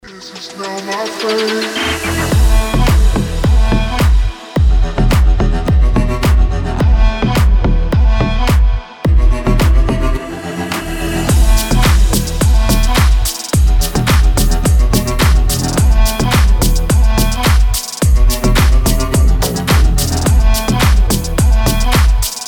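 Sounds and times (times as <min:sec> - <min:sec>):
slow bass: 0:02.0 - 0:22.3.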